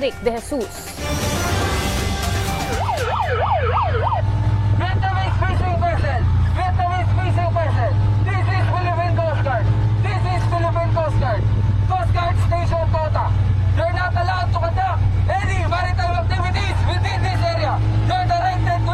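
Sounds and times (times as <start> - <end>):
speech: 0.0 - 1.4
low drone of Philippine Coast Guard rubber boat motor: 1.0 - 18.9
siren sounded from Philippine Coast Guard rubber boat: 1.3 - 5.0.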